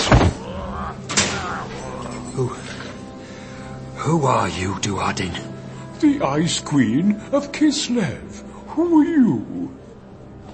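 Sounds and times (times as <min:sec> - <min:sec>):
heavy prison cell door slamming shut with a clang: 0:01.1 - 0:01.4
speech: 0:02.4 - 0:02.7, 0:04.1 - 0:09.8.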